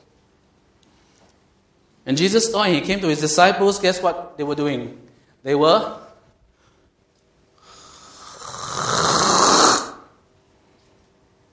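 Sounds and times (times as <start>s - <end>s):
speech: 2.0s - 6.0s
person imitating a snore: 7.8s - 10.2s.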